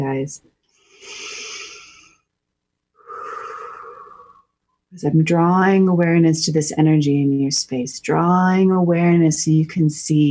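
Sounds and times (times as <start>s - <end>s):
speech: 0.0s - 1.2s, 4.9s - 10.2s
slow deep breath during a guided breathing exercise: 0.7s - 2.2s, 3.0s - 4.6s.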